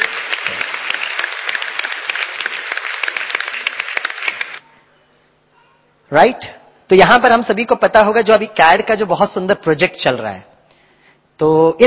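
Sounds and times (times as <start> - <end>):
audience applauding loudly at a research talk: 0.0 - 4.6
speech: 6.1 - 10.5, 11.4 - 11.8.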